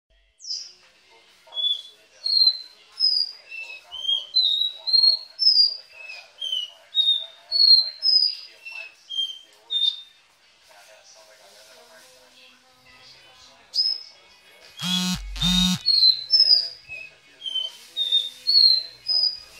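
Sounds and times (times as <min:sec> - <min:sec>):
Belgian canary singing clear whistled notes: 0:01.6 - 0:10.0, 0:14.7 - 0:19.5.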